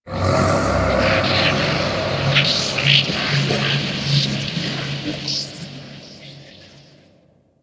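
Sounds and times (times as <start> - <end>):
disturbance noise: 0.1 - 5.8.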